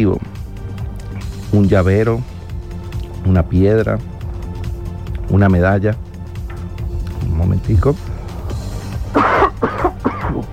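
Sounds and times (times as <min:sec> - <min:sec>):
speech: 0:00.0 - 0:00.3, 0:01.5 - 0:02.3, 0:03.2 - 0:04.1, 0:05.3 - 0:06.1, 0:07.4 - 0:08.1
harsh throaty coughs in a coughing fit: 0:09.0 - 0:10.5.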